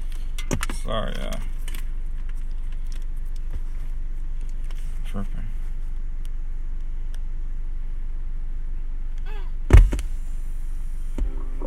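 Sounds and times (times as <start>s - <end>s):
low rumble of a car interior: 0.0s - 11.6s
speech: 0.8s - 1.6s, 5.2s - 5.4s
loud thump: 9.7s - 10.2s.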